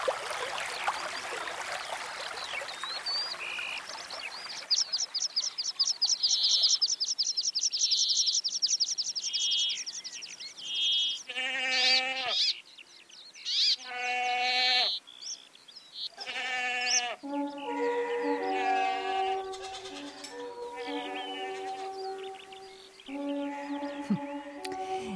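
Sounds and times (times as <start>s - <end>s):
birds chirping and trilling in the mountains at dawn: 0.2s - 25.1s
bleating animal cries: 11.2s - 12.5s, 13.5s - 15.0s, 16.2s - 17.2s, 18.2s - 22.3s.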